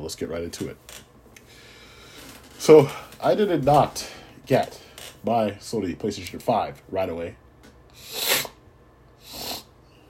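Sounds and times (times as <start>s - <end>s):
speech: 0.0s - 1.1s, 2.6s - 7.4s
person sniffling: 8.0s - 8.6s, 9.2s - 9.7s.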